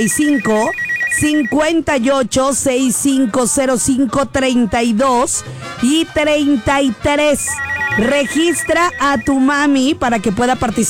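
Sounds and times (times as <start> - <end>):
telephone ringing on a radio call-in line: 0.0 - 1.6, 7.3 - 9.5
speech: 0.0 - 10.8.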